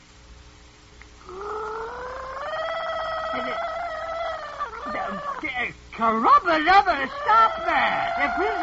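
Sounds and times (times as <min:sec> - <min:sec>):
person gargling water to mimic a nightingale's singing: 0:01.2 - 0:05.5
laughter: 0:04.4 - 0:05.5, 0:06.7 - 0:08.6
speech: 0:05.1 - 0:08.6.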